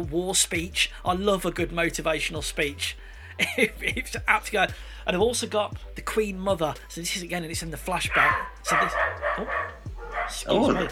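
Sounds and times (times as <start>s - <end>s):
speech: 0.0s - 9.7s, 10.3s - 10.9s
dog barking: 8.1s - 10.9s.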